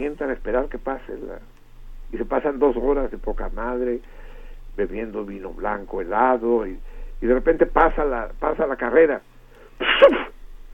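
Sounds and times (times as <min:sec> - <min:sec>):
speech: 0:00.0 - 0:10.4
person sneezing: 0:09.8 - 0:10.4.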